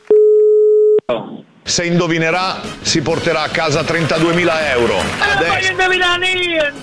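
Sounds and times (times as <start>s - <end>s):
telephone busy tone after the caller hung up: 0.1s - 1.0s
speech: 1.8s - 6.8s.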